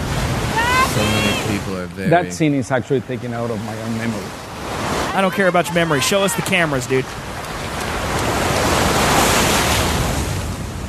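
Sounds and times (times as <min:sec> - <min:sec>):
ocean waves breaking on a beach: 0:00.0 - 0:10.8
speech: 0:01.0 - 0:07.3.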